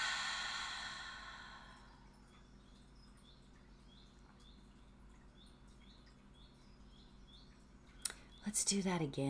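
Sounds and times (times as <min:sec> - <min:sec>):
person exhaling during a breathing exercise: 0:00.0 - 0:01.9
speech: 0:08.5 - 0:09.2.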